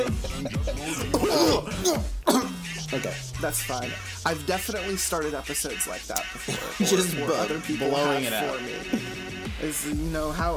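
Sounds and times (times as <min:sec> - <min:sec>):
laughter: 0:00.0 - 0:01.9, 0:06.1 - 0:09.3
person coughing harsh throaty bursts close to the microphone: 0:00.0 - 0:03.0, 0:06.4 - 0:07.2
person clearing throat: 0:00.1 - 0:03.0
speech: 0:03.0 - 0:10.5.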